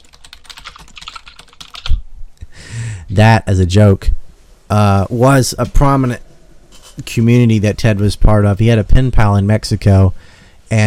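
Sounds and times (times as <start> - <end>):
typing on a computer keyboard: 0.0 - 2.0
speech: 3.1 - 6.2, 7.0 - 10.8.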